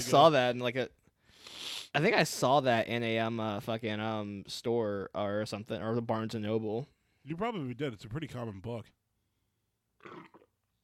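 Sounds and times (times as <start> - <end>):
speech: 0.0 - 1.0, 1.9 - 9.0, 10.0 - 10.4
burp: 10.0 - 10.6.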